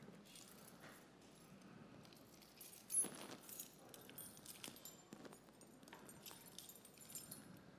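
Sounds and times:
keys on a key ring jangling: 0.1 - 7.6.

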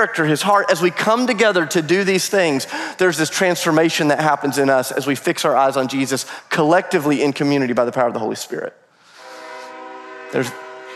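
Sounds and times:
speech: 0.0 - 8.8, 10.3 - 10.6
passing train horn blaring in a sustained chord: 9.1 - 10.9.

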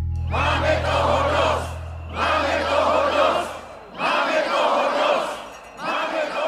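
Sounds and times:
large outdoor crowd of demonstrators roaring and chanting in Old Town Square in Czechia: 0.2 - 6.4.

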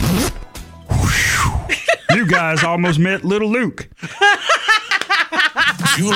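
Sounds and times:
rasping zipper pulls: 0.0 - 0.4
laughter: 1.7 - 3.3, 4.0 - 6.1
speech: 2.3 - 4.5, 6.0 - 6.1.

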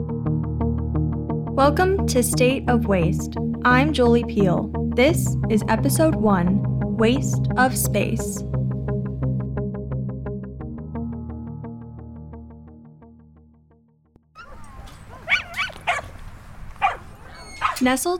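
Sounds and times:
melodic music intro: 0.0 - 14.0
speech: 1.6 - 8.6, 17.8 - 18.1
dogs barking and yipping while playing at a dog park: 14.4 - 18.0.

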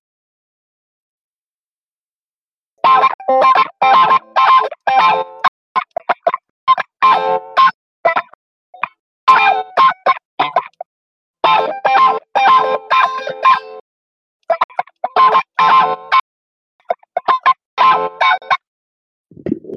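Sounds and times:
electric guitar through a wah pedal and compressor playing staccato phrases: 2.8 - 10.8, 11.4 - 13.8, 14.5 - 16.2, 16.8 - 18.6.

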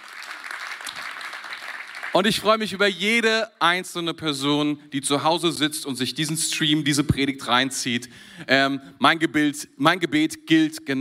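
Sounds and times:
crowd applauding: 0.0 - 2.4
speech: 2.2 - 10.9.

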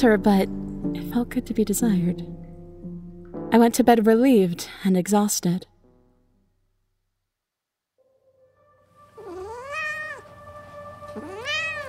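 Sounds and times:
speech: 0.0 - 2.4, 3.5 - 5.7
cat meowing: 9.2 - 10.4, 11.1 - 11.8.

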